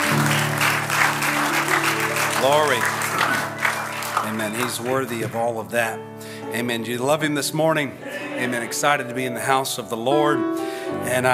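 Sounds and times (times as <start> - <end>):
crowd applauding: 0.0 - 5.8
speech: 2.4 - 3.0, 4.3 - 11.3
laughter: 8.0 - 8.9.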